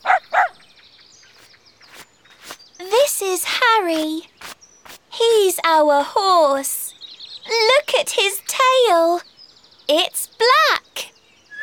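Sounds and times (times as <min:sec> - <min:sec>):
black-and-white pet dog barking: 0:00.0 - 0:00.6
faint low noise: 0:00.0 - 0:11.6
speech: 0:03.8 - 0:04.3, 0:05.4 - 0:06.8, 0:07.5 - 0:09.3, 0:09.9 - 0:10.1.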